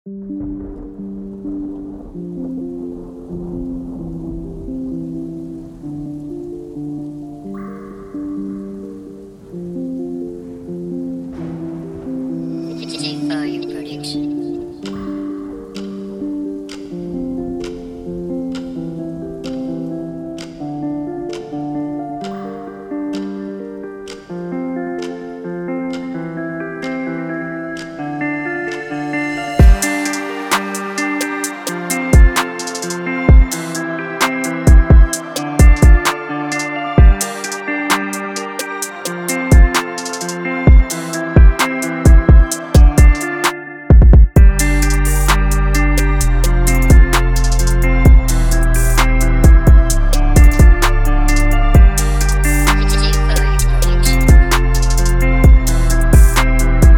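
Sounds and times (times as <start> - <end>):
urban ambience: 0.2 - 56.9.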